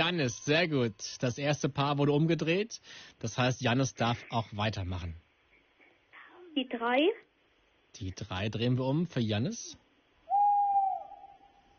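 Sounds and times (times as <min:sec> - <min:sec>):
speech: 0:00.0 - 0:05.2, 0:06.6 - 0:07.2, 0:07.9 - 0:09.8
tawny owl hooting: 0:10.2 - 0:11.7.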